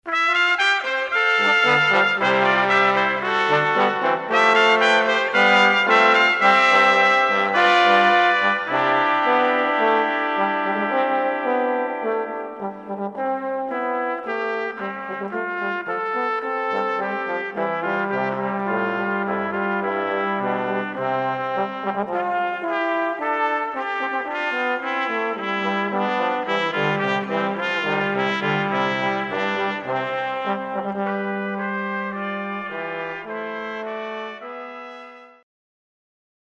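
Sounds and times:
brass quartet playing: 0.0s - 35.4s.

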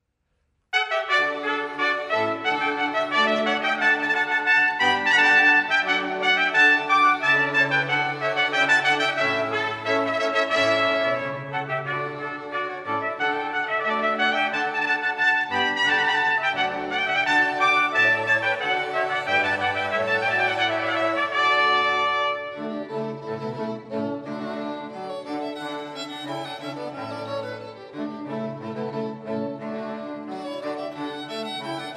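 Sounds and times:
two trumpets: 0.8s - 22.8s
string quartet: 0.8s - 31.9s.

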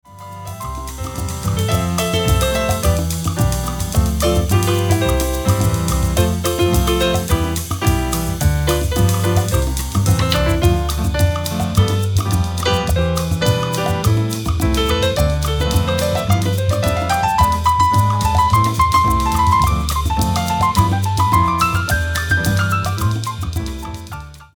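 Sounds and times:
samba ensemble playing: 0.6s - 23.8s.

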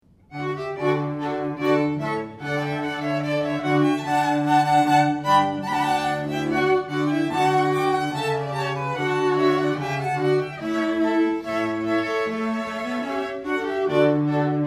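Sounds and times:
string quartet playing a rondeau: 0.3s - 14.6s.

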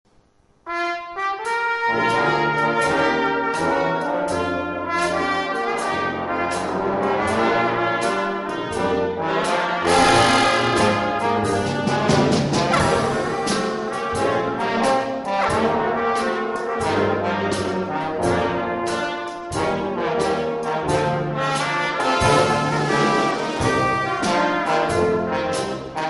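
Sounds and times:
jazz band playing blues: 0.7s - 26.0s.

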